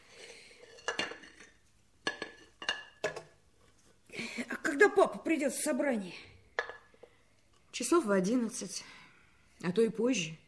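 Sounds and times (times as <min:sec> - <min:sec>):
plates and cutlery clinking and clattering during hand dishwashing: 0:00.3 - 0:03.3
speech: 0:04.4 - 0:06.3, 0:07.8 - 0:09.0, 0:09.6 - 0:10.4.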